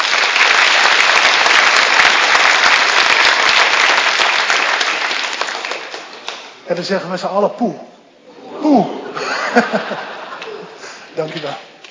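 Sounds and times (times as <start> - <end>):
audience applause: 0.0 - 6.4
speech: 6.7 - 7.9, 8.6 - 10.1, 11.2 - 11.7
laughter: 8.3 - 11.0.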